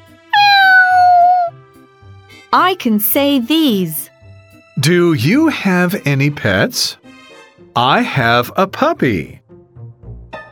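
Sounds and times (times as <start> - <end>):
domestic cat meowing: 0.4 - 1.5
speech: 2.5 - 4.1, 4.8 - 7.0, 7.8 - 9.4.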